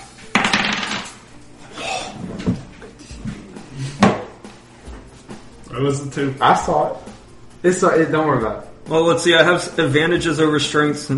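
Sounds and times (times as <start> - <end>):
dice rolled for a strength check across a hard tabletop: 0.3 - 1.2
speech: 5.8 - 11.1.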